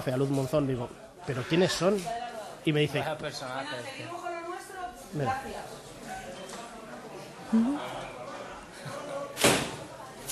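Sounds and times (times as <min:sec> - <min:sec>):
speech: 0:00.0 - 0:04.3, 0:05.1 - 0:05.8, 0:07.5 - 0:08.2
low murmur of voices: 0:00.0 - 0:10.3
door slamming shut: 0:09.4 - 0:09.8.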